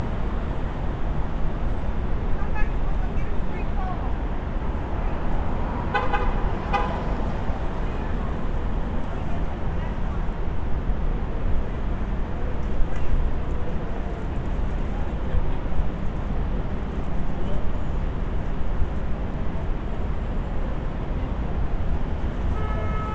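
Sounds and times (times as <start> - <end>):
city ambience: 0.0 - 23.1.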